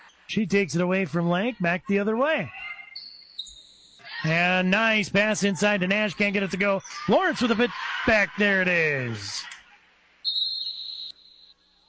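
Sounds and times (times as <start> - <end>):
speech: 0.3 - 2.6, 4.2 - 9.5
laughter: 5.2 - 9.8
referee's whistle blowing for a timeout: 10.2 - 11.7.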